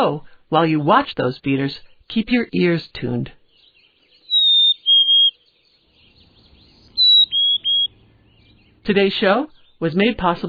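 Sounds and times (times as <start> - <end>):
speech: 0.0 - 3.4, 8.8 - 10.4
chickadee call: 4.3 - 5.4, 7.0 - 7.9.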